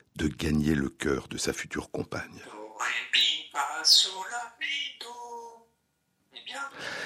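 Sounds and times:
speech: 0.2 - 5.2
parrot squawking and mimicking with voice-like calls: 2.4 - 5.1.

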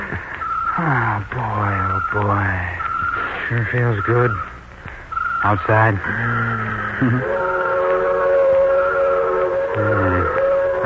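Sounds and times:
speech: 0.8 - 2.8, 3.5 - 4.6, 5.4 - 7.6
low rail rumble: 6.2 - 10.8
freight train whistle: 7.0 - 10.8.

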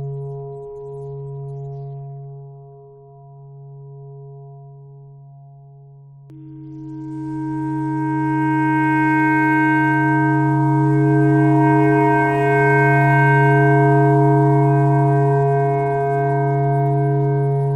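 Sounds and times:
clarinet playing pentatonic notes: 6.9 - 17.7.

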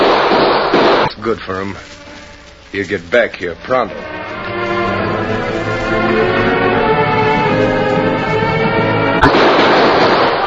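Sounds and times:
gunshot at an outlaw's hideout cabin: 0.0 - 1.2, 9.2 - 10.4
speech: 1.2 - 2.0, 2.7 - 6.5
sustained droning music: 1.5 - 9.6.

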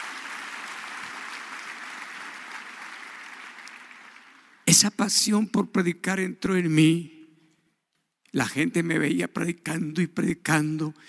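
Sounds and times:
audience applauding: 0.0 - 4.6
speech: 4.7 - 7.2, 8.3 - 11.0.

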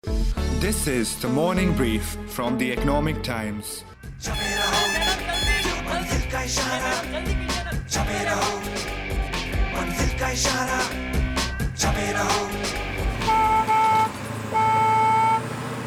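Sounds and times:
speech: 0.6 - 9.2, 9.8 - 11.2, 11.8 - 13.0
dense street traffic noise: 4.0 - 15.8
school bus horn honking: 4.2 - 6.2, 13.0 - 15.8.

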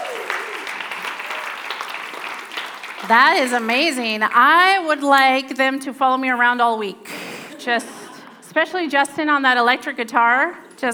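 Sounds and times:
audience clapping steadily and loudly: 0.0 - 5.8
speech: 3.0 - 10.9.

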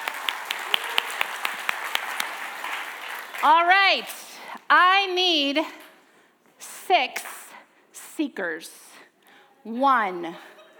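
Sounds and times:
small crowd clapping: 0.0 - 4.1
speech: 3.4 - 5.8, 6.9 - 7.3, 8.2 - 8.9, 9.6 - 10.5.

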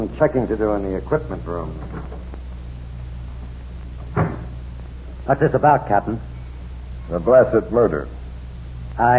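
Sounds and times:
steady low room hum: 0.0 - 9.1
speech: 0.1 - 2.1, 5.3 - 6.3, 7.1 - 8.2, 9.0 - 9.1
back door shutting thud: 4.0 - 4.6
back door opening click: 4.1 - 4.6.

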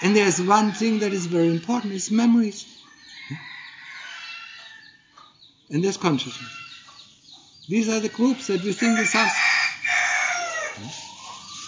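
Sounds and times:
rooster crowing outside: 0.0 - 1.8, 3.1 - 5.1, 8.2 - 11.0
speech: 0.0 - 3.5, 5.7 - 6.6, 7.7 - 9.5, 10.8 - 11.0
chickens: 0.0 - 11.6.

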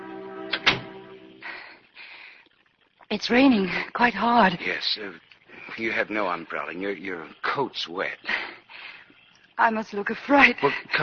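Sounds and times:
soft sustained tone: 0.0 - 1.8
door closing with a sharp click: 0.5 - 1.1
speech: 3.1 - 8.4, 9.6 - 11.0.

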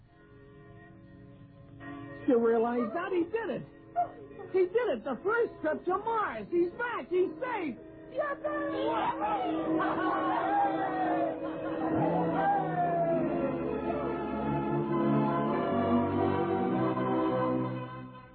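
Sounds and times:
speech: 2.3 - 11.2
church bells ringing: 6.4 - 17.6
excited crowd chattering and cheering: 8.2 - 16.7
scattered laughter in a celebratory crowd: 8.7 - 14.6.

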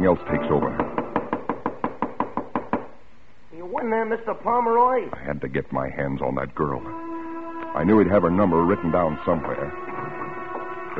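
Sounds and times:
speech: 0.0 - 0.9, 4.0 - 7.0, 7.8 - 9.9
pounding knocks on a hotel room door: 0.7 - 3.0.

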